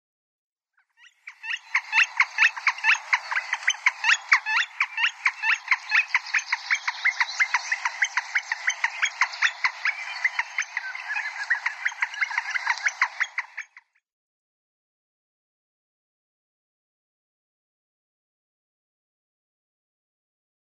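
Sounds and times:
Northern Flicker call: 1.0s - 13.8s.

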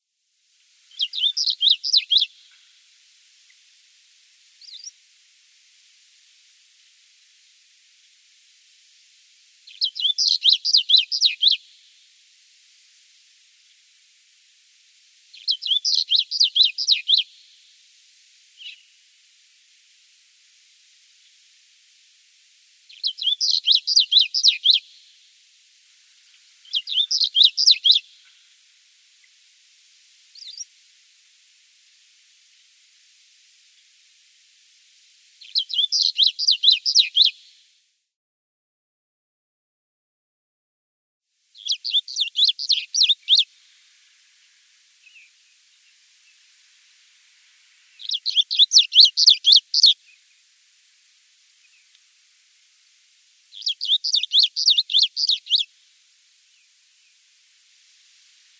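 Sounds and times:
Striated Bunting singing: 0.9s - 2.5s, 9.6s - 11.6s, 15.3s - 17.2s, 22.9s - 24.8s, 26.6s - 28.2s, 35.4s - 37.3s, 41.6s - 43.5s, 48.0s - 50.1s, 53.6s - 55.7s.

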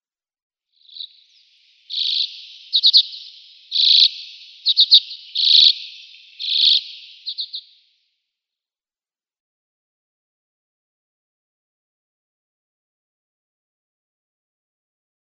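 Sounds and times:
Arctic Redpoll song: 0.8s - 7.9s.

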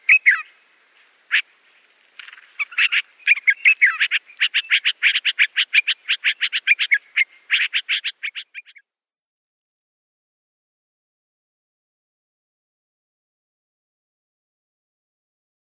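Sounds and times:
Yellow-vented bulbul chattering song: 0.0s - 0.5s, 2.2s - 8.8s.

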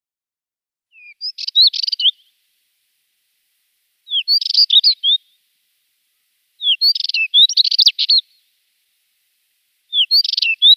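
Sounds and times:
spectacled warbler singing scratchy warbled phrases: 0.9s - 2.4s, 4.0s - 5.5s, 6.1s - 8.6s, 9.7s - 10.7s.

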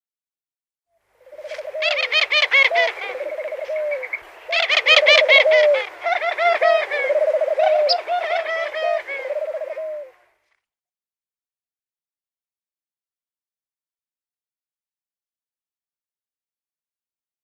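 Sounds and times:
African Collared Dove calling: 1.2s - 10.4s.

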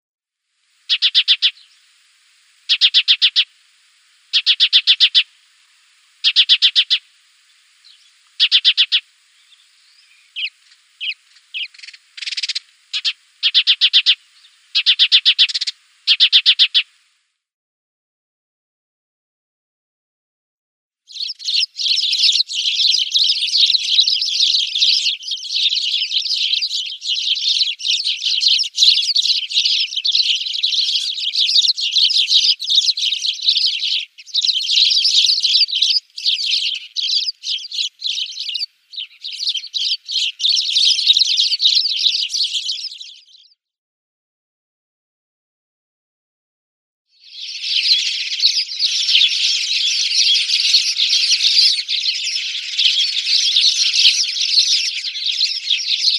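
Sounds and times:
Spanish Sparrow calls: 0.9s - 1.9s, 2.6s - 3.5s, 4.3s - 5.3s, 6.2s - 7.0s, 7.8s - 16.9s, 21.1s - 43.6s, 47.2s - 56.1s.

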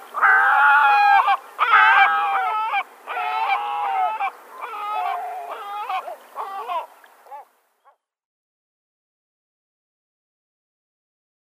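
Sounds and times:
great black-backed gull long nasal wailing calls: 0.2s - 7.5s.

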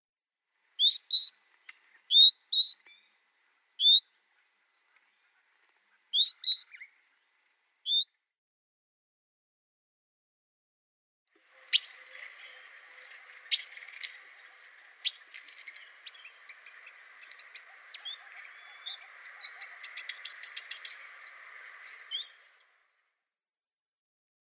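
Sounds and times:
Red-billed Firefinch calls: 0.8s - 3.1s, 3.8s - 4.1s, 4.8s - 6.9s, 11.5s - 23.0s.

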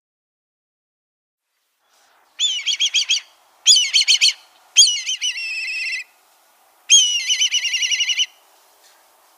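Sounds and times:
black kite shrill trilled whinnies: 2.4s - 6.1s, 6.9s - 8.3s.

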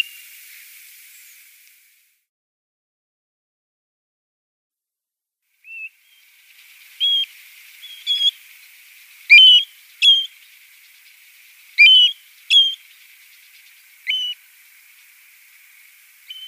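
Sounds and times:
European golden plover whistling calls: 0.0s - 0.2s, 7.0s - 8.3s, 9.3s - 10.3s, 11.8s - 12.8s, 14.0s - 14.4s, 16.3s - 16.4s
faint steady hiss: 0.0s - 2.3s, 5.4s - 16.4s.

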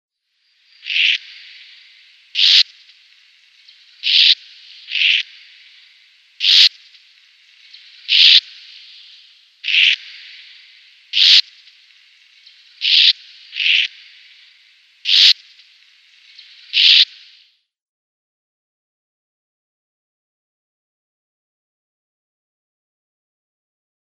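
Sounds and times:
plain martin calling: 0.8s - 17.3s.

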